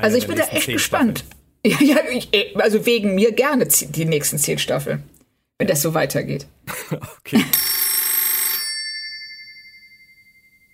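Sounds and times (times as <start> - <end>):
speech: 0.0 - 7.7
laughter: 6.7 - 7.6
telephone bell ringing: 7.5 - 10.7.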